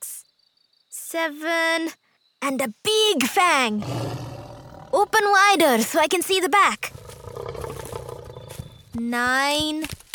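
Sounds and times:
speech: 1.1s - 4.2s, 4.9s - 6.9s, 9.0s - 10.0s
lion roaring: 3.8s - 5.1s, 6.9s - 8.7s.

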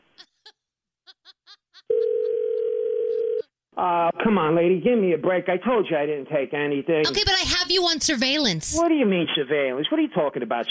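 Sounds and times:
short vocal bursts like chuckles: 0.0s - 2.6s
loud steady telephone dial tone: 1.9s - 3.5s
speech: 3.8s - 10.7s.

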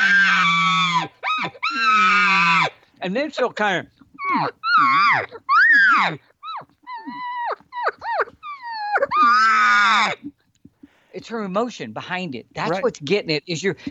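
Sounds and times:
cow elk calls imitated through a call tube: 0.0s - 2.8s, 4.0s - 10.3s
speech: 3.0s - 6.3s, 11.2s - 13.8s.

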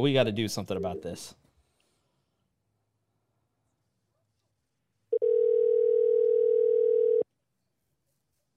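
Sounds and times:
speech: 0.0s - 1.4s
phone line's ringback tone through a handset: 5.1s - 7.2s.

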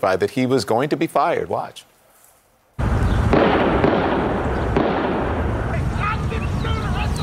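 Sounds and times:
speech: 0.0s - 1.9s
loud gunfire with sharp cracks: 2.8s - 6.2s.

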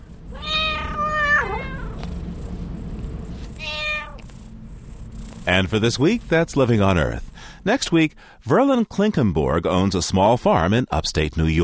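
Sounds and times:
low hum: 0.0s - 11.6s
cat meowing: 0.3s - 2.1s, 3.5s - 4.3s
speech: 5.5s - 11.6s.

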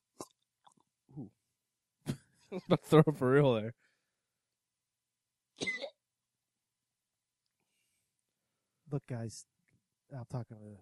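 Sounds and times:
speech: 1.2s - 1.4s, 2.5s - 3.8s, 8.9s - 10.8s
single short harsh cough: 5.6s - 6.0s.

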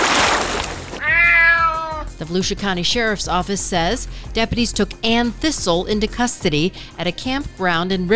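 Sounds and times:
splashing rushing noise: 0.0s - 1.0s
cat yowling: 0.9s - 2.1s
speech: 2.2s - 8.1s.

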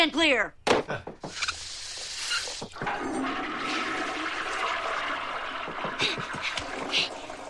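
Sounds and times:
speech: 0.0s - 1.4s
toilet flushing: 2.0s - 7.4s
water swirling and draining down the toilet bowl: 2.7s - 7.4s.

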